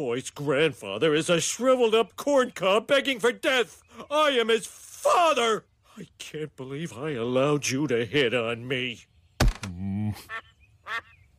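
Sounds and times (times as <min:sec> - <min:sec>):
speech: 0:00.0 - 0:09.1, 0:10.1 - 0:11.1
ducks quacking: 0:10.2 - 0:11.3.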